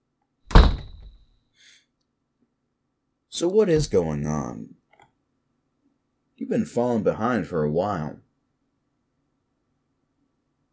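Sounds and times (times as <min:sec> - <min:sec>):
door shutting: 0:00.5 - 0:01.2
speech: 0:03.4 - 0:04.8, 0:06.4 - 0:08.2.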